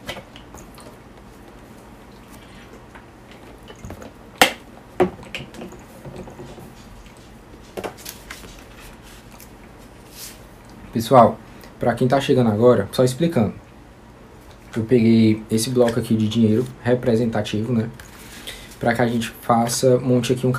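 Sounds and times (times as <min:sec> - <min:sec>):
person drinking water: 0:00.3 - 0:04.2
speech: 0:11.0 - 0:13.6, 0:14.8 - 0:18.1, 0:18.8 - 0:20.5.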